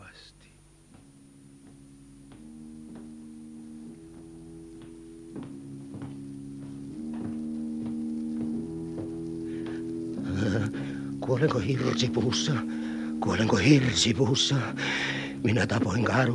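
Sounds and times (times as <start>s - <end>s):
nervous footsteps pacing across a hard floor: 0.8s - 12.7s
low sustained harmonic drone: 0.9s - 16.3s
speech: 11.4s - 16.3s.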